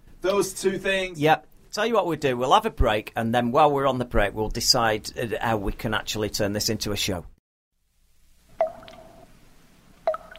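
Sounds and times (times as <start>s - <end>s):
speech: 0.2s - 7.3s
slow resonant drips of liquid: 8.6s - 9.3s, 10.0s - 10.3s.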